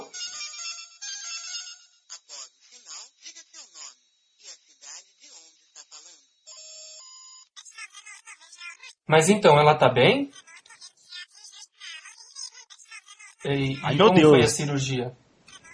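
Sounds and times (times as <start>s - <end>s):
mobile phone ringtone with a chirpy electronic melody: 0.0s - 3.1s, 4.4s - 7.5s
speech: 9.1s - 10.4s, 13.5s - 15.2s.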